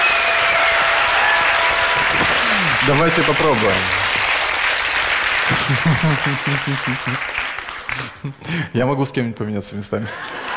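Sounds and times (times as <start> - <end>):
applause from the front rows of an audience: 0.0 - 8.3
speech: 2.9 - 4.1, 5.5 - 7.4, 8.0 - 10.4
laughter: 5.4 - 8.6, 10.0 - 10.5.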